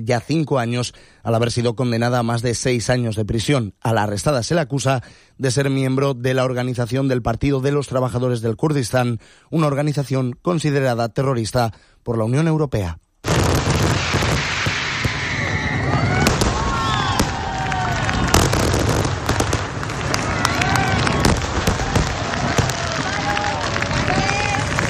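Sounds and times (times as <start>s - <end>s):
speech: 0.0s - 14.2s
fireworks display bangs and crackling bursts: 13.2s - 24.8s
shrill whistling firework rockets: 13.3s - 24.8s.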